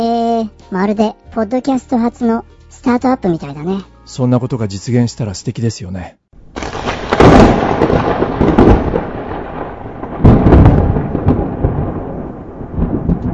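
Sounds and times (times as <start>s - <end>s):
speech: 0.0s - 6.2s
thunder rumbling: 6.4s - 13.3s.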